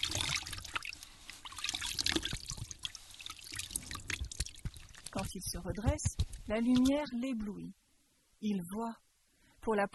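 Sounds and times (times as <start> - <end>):
water from a reservoir trickling and splashing as hands wash a face: 0.0 - 5.6
speech: 5.2 - 7.8, 8.4 - 9.0, 9.6 - 9.9.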